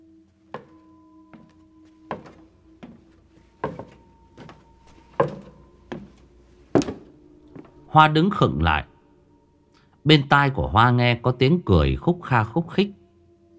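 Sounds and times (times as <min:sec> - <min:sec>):
walking cane tapping on a wooden floor: 0:00.6 - 0:00.8, 0:03.6 - 0:04.6, 0:05.2 - 0:06.1, 0:06.8 - 0:07.1
speech: 0:07.9 - 0:08.9, 0:10.0 - 0:13.0.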